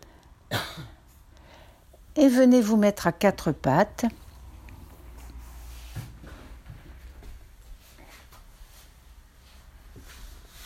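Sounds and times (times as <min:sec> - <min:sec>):
single short forceful cough: 0:00.5 - 0:01.0
speech: 0:02.2 - 0:04.2.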